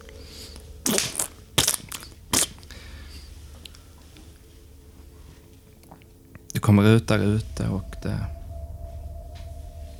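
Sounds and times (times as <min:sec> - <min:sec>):
squelchy wet stomping: 0:00.9 - 0:02.6
speech: 0:06.7 - 0:08.4.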